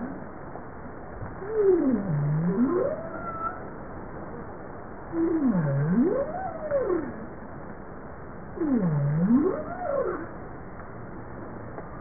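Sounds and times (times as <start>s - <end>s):
bowhead whale U-shaped moans: 1.4s - 3.6s, 5.2s - 7.2s, 8.6s - 10.3s.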